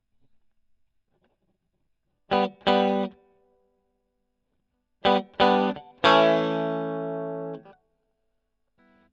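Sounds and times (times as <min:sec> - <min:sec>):
electric guitar: 0:02.3 - 0:03.3, 0:05.0 - 0:07.8.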